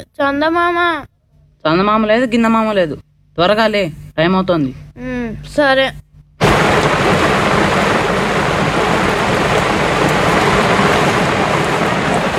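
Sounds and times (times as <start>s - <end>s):
speech: 0.0s - 6.0s
heavy rain: 6.4s - 12.3s.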